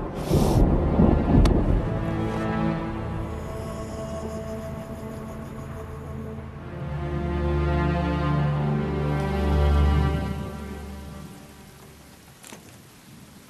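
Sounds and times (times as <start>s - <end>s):
sharp thunder crack: 0.0s - 2.2s
deep rolling thunder rumbling: 0.0s - 3.2s
steady rain pouring down: 0.0s - 13.4s.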